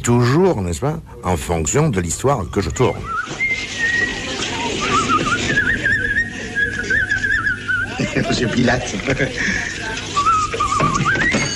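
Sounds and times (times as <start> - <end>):
speech: 0.0 - 3.8, 8.2 - 10.1
man whistling a tune: 2.4 - 8.1, 10.2 - 11.5
laughter: 3.8 - 11.5.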